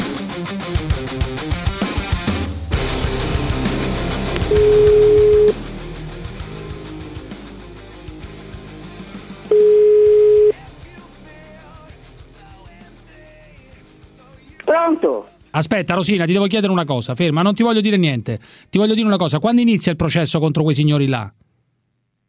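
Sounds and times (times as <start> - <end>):
busy music: 0.0 - 17.4
ringback tones from an outgoing telephone call: 4.5 - 5.6, 9.5 - 10.6
speech: 15.6 - 21.5.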